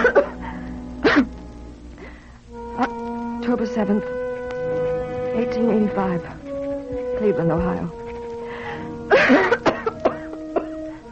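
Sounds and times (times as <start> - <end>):
person coughing: 0.0 - 0.4, 1.0 - 1.3, 9.1 - 10.8
faint steady hum: 0.0 - 11.0
speech: 3.5 - 4.2, 5.4 - 6.4, 7.2 - 8.0, 9.3 - 9.6.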